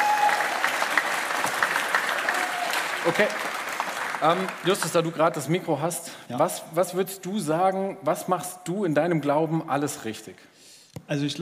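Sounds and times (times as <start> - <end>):
room full of people clapping: 0.0 - 5.6
speech: 3.0 - 3.5, 4.2 - 10.5, 11.1 - 11.4.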